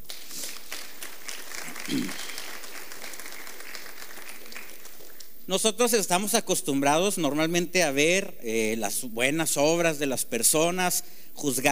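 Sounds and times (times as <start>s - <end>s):
audience applauding during a sermon: 0.0s - 5.4s
speech: 1.9s - 2.2s, 5.5s - 11.7s.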